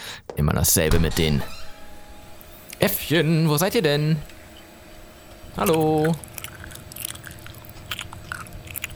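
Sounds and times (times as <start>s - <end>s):
speech: 0.4s - 1.6s, 2.8s - 4.3s, 5.6s - 6.3s
reindeer chewing on network cables in a basement: 5.6s - 8.9s.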